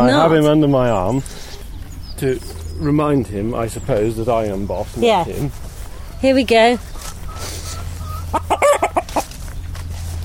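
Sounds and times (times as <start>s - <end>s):
low hum: 0.0s - 10.2s
speech: 0.1s - 1.4s, 2.2s - 5.6s, 6.2s - 6.9s
cockerel crowing while being held: 5.8s - 9.3s.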